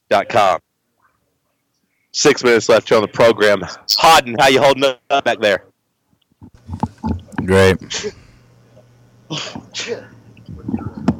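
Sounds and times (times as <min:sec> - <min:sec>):
speech: 0:00.1 - 0:00.6, 0:02.1 - 0:05.7, 0:07.5 - 0:08.2, 0:09.3 - 0:10.1
person sneezing: 0:09.3 - 0:10.2.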